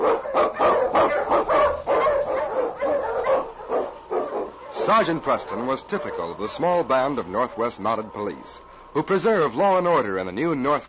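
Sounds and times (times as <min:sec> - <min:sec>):
pack of husky sled dogs barking and yipping excitedly: 0:00.0 - 0:08.2
speech: 0:04.9 - 0:10.8.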